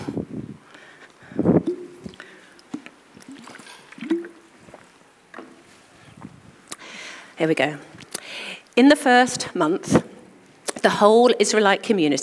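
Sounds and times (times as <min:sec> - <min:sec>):
person swallowing: 0:01.5 - 0:04.5
water sloshing in a bottle: 0:01.6 - 0:05.7
speech: 0:07.4 - 0:07.9, 0:08.8 - 0:10.1, 0:10.8 - 0:12.2.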